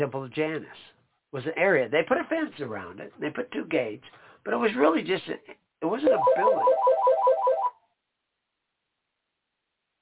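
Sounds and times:
speech: 0:00.0 - 0:07.0
telephone ringing with a warbling electronic trill for an incoming call: 0:06.1 - 0:07.8.

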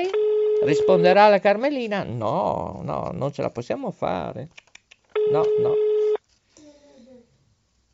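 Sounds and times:
telephone ringback tone during outgoing call: 0:00.0 - 0:01.2, 0:05.2 - 0:06.2
speech: 0:00.0 - 0:04.6, 0:05.3 - 0:05.9.

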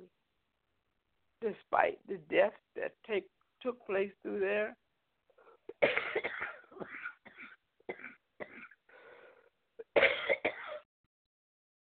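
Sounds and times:
speech: 0:01.4 - 0:04.8
harsh coughing fit set off by lawnmowers: 0:05.7 - 0:08.8, 0:09.8 - 0:10.8.

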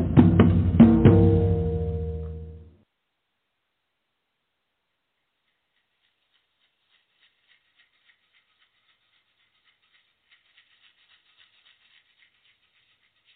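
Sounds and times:
quick hard drum strikes: 0:00.0 - 0:02.6
deep ringing drum boom: 0:00.0 - 0:02.7.

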